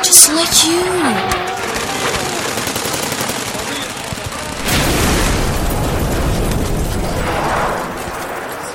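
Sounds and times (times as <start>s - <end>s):
rapid bursts of gunfire in a battle: 0.1s - 8.7s
heavy explosion with deep lingering rumble: 4.4s - 8.7s.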